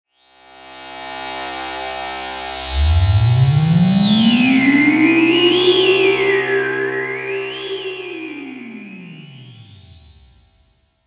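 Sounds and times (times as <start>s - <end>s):
synthetic swell: 2.6s - 10.4s.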